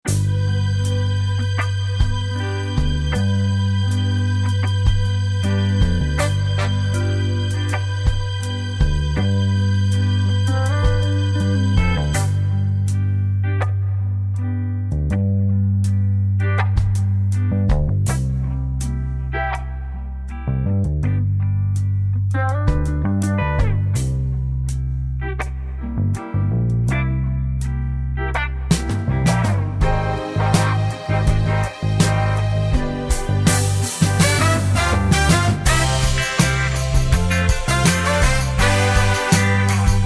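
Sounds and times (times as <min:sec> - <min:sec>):
backing track without backing vocals: 0:00.0 - 0:40.0.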